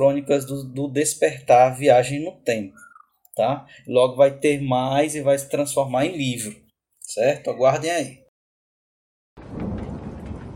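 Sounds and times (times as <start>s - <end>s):
speech: 0.0s - 8.2s
thunder rumbling: 9.4s - 10.5s.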